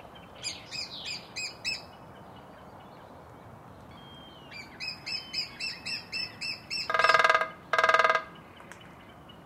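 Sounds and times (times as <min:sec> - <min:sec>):
lesser spotted woodpecker piping kee calls: 0:00.4 - 0:02.0, 0:03.9 - 0:09.4
lesser spotted woodpecker drumming: 0:06.8 - 0:08.3.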